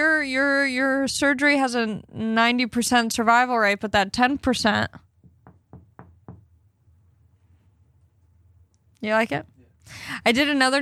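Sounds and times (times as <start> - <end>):
speech: 0.2 - 5.0, 9.0 - 10.8
knocking on wood: 5.2 - 6.6.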